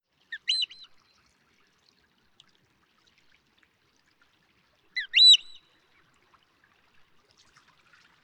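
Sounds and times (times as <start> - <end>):
Eurasian oystercatcher piping calls: 0.3 - 0.8, 5.0 - 5.6.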